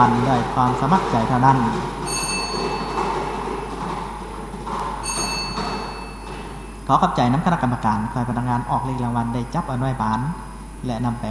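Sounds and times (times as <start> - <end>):
speech: 0.0 - 2.0, 6.9 - 11.2
lottery number-drawing device spun at a prize draw: 0.0 - 6.9.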